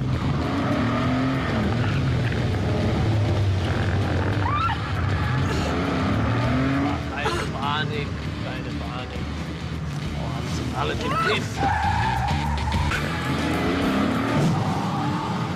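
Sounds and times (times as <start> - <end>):
car engine revving hard as the driver steps on the gas: 0.0 - 15.5
road noise: 0.0 - 15.5.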